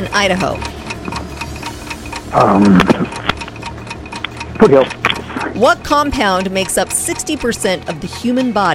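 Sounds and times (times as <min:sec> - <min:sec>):
speech: 0:00.0 - 0:00.7, 0:02.3 - 0:03.4, 0:04.6 - 0:08.7
60-second countdown clock ticking for a quiz: 0:00.0 - 0:08.7.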